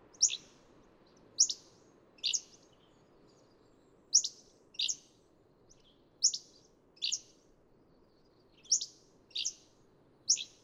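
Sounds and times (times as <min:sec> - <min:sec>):
Hammond's flycatcher giving high quick phrases: 0:00.2 - 0:00.4, 0:02.2 - 0:02.4, 0:08.7 - 0:09.6, 0:10.3 - 0:10.6.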